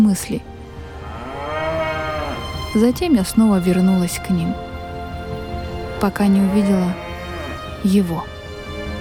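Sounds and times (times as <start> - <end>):
speech: 0.0 - 0.5, 2.8 - 4.7, 6.0 - 7.0, 7.8 - 8.3
cow mooing loudly: 1.0 - 2.6, 6.1 - 8.0.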